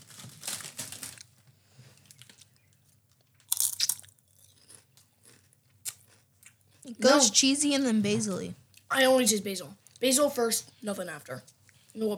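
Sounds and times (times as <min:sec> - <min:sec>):
crunching on a cheesy chip: 0:00.0 - 0:06.6
soft chewing: 0:00.9 - 0:07.0, 0:08.6 - 0:08.9, 0:09.8 - 0:12.0
speech: 0:06.9 - 0:12.1.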